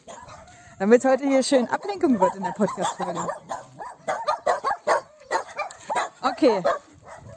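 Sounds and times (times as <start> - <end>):
several neighbourhood dogs barking: 0.0 - 0.6, 1.6 - 7.3
dogs yipping and whining: 0.0 - 0.7, 1.8 - 6.1
speech: 0.8 - 3.7, 6.3 - 6.9.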